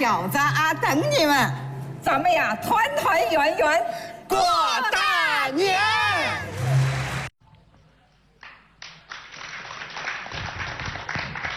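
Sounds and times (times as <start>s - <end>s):
speech: 0.0s - 6.5s
audience applause: 6.0s - 7.3s, 8.8s - 11.5s.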